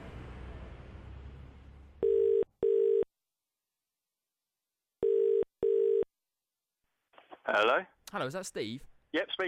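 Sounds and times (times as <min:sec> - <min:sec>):
telephone ringing tone down the line: 0:02.0 - 0:03.1, 0:05.0 - 0:06.1
speech: 0:07.5 - 0:09.4.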